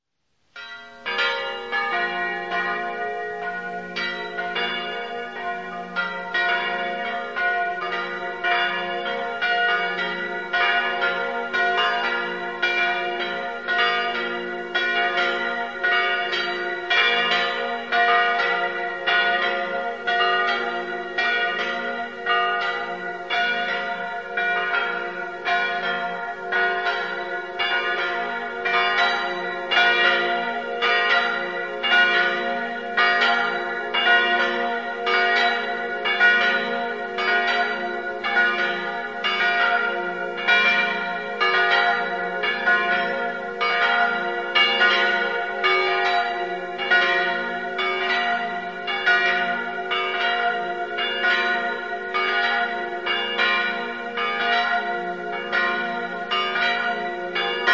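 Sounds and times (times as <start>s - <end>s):
bells ringing in Dolegna: 0.6s - 57.7s.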